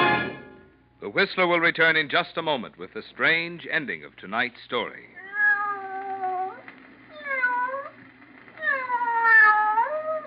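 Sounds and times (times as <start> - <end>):
speech: 1.0 - 5.2
cat meowing: 5.2 - 8.0, 8.6 - 10.2.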